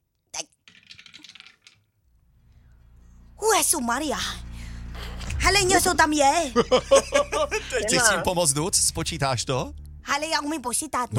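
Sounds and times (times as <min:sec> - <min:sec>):
die thrown and rolling on a table: 0:00.7 - 0:01.9
speech: 0:03.7 - 0:04.5, 0:05.5 - 0:11.1
laughter: 0:06.6 - 0:08.2.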